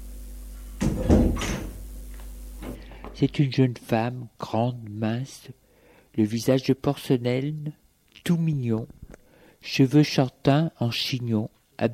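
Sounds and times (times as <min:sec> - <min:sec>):
door swinging open with clattering and rattling: 0:00.8 - 0:01.8
speech: 0:03.1 - 0:05.6, 0:06.2 - 0:09.0, 0:09.6 - 0:11.9.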